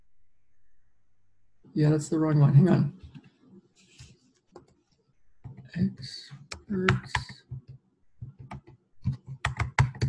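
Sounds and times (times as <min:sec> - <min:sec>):
speech: 0:01.8 - 0:03.1, 0:05.7 - 0:07.4
typing on a computer keyboard: 0:06.5 - 0:10.0.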